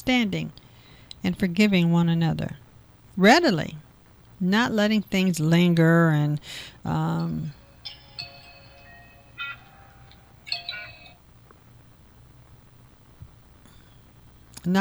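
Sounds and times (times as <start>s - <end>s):
speech: 0.0s - 0.6s, 1.2s - 2.6s, 3.2s - 3.8s, 4.4s - 7.6s
low hum: 0.0s - 14.7s
phone ringer sounding bell-like chiming tones: 6.4s - 12.2s.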